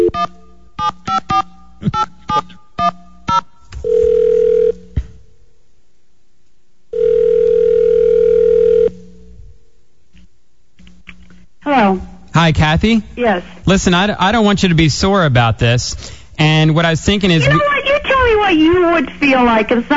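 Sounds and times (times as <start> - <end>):
touch-tone telephone dialing beeps: 0.0 - 3.5
steady telephone tone: 0.0 - 4.9, 6.9 - 9.3
speech: 12.4 - 17.8, 18.5 - 19.9.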